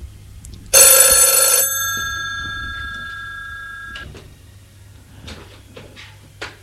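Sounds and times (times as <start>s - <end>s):
old-fashioned telephone bell ringing: 0.8s - 4.0s.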